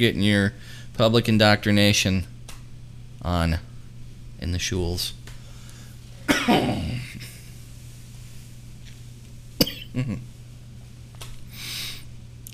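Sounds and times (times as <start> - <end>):
speech: 0.0 - 2.3, 3.2 - 3.7, 4.4 - 5.2, 10.0 - 10.3
steady low hum: 0.0 - 12.5
person fake coughing turning into real coughing: 6.3 - 7.4, 9.6 - 10.2.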